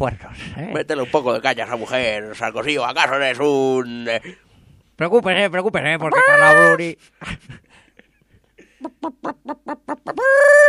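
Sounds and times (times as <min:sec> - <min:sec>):
speech: 0:00.0 - 0:04.4, 0:05.0 - 0:07.7, 0:08.9 - 0:10.6
chicken clucking: 0:06.1 - 0:06.8, 0:08.8 - 0:10.6
chicken squawk: 0:06.1 - 0:06.9, 0:09.0 - 0:10.6.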